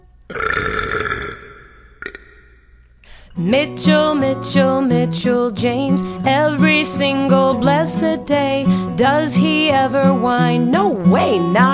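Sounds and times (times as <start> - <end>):
burps: 0.3 - 2.4
speech: 3.4 - 11.7.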